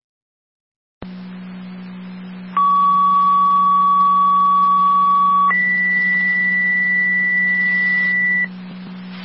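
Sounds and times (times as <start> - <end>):
radio static hiss: 1.0 - 9.2
fire dispatch paging alert tones over a radio channel: 2.6 - 8.5.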